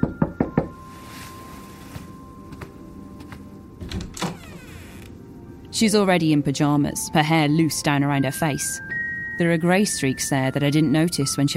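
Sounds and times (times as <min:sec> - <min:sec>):
mother knocking on her child's door: 0:00.0 - 0:00.8
speech: 0:05.8 - 0:11.5.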